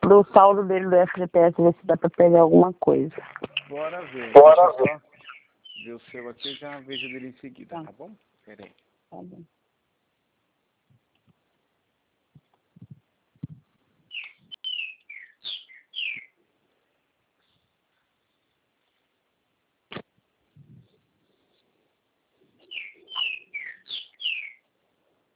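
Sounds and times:
speech: 0.1 - 5.1, 5.8 - 9.6
bird singing: 4.8 - 7.4, 14.1 - 16.4, 22.6 - 24.7.

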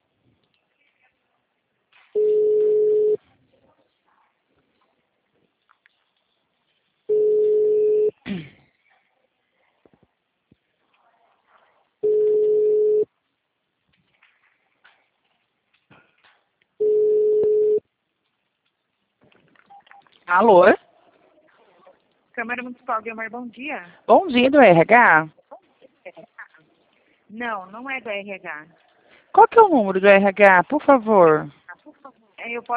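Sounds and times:
faint noise: 0.0 - 32.7
telephone ringback tone: 2.2 - 3.2, 7.1 - 8.1, 12.0 - 13.0, 16.8 - 17.8
speech: 20.3 - 20.8, 22.4 - 25.4, 27.3 - 31.6, 32.4 - 32.7.

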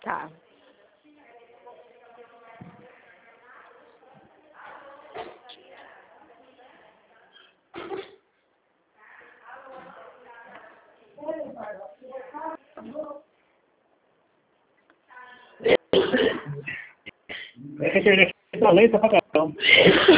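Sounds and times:
people talking: 0.0 - 8.1, 9.0 - 13.3, 17.6 - 20.1
two people coughing: 7.7 - 8.2, 15.6 - 17.6, 19.6 - 20.1.

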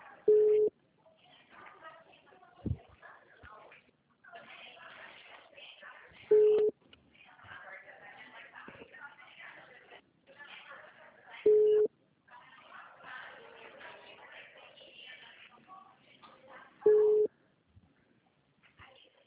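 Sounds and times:
faint voices: 0.0 - 19.2
ringback tones from an unanswered phone call going to voicemail: 16.9 - 17.3.

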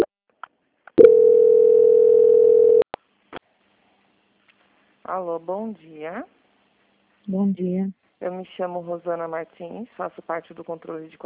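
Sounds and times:
steady single-pitched telephone call transfer tone while on hold: 1.0 - 2.9
speech: 5.2 - 6.4, 7.3 - 11.2.

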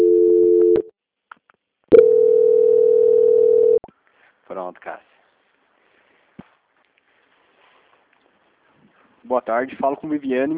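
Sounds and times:
telephone call-transfer tone: 0.0 - 0.9, 1.9 - 3.8
speech: 4.5 - 5.1, 9.2 - 10.5.

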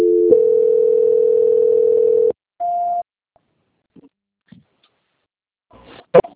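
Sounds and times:
steady telephone tone while a call is transferred: 0.0 - 3.0.

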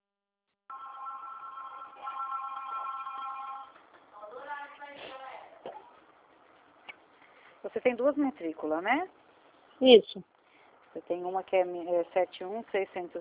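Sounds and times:
telephone ringing with an electronic trill over a phone line: 0.7 - 3.9
speech: 7.6 - 9.2, 9.8 - 10.3, 11.0 - 13.1.

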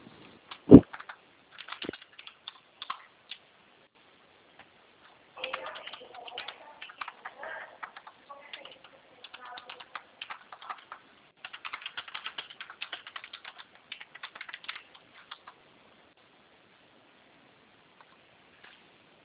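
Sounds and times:
typing on a computer keyboard: 0.5 - 3.4, 5.4 - 15.6.

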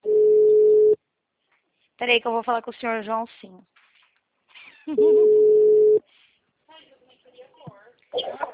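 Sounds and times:
steady telephone tone after a dropped call: 0.0 - 1.0, 5.0 - 6.0
speech: 2.0 - 3.8, 4.9 - 5.5.

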